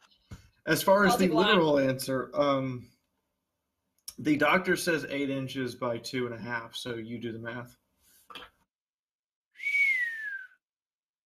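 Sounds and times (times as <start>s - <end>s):
speech: 0.7s - 2.9s, 4.2s - 7.8s
single clear whistled tone gliding downward in pitch: 9.6s - 10.6s.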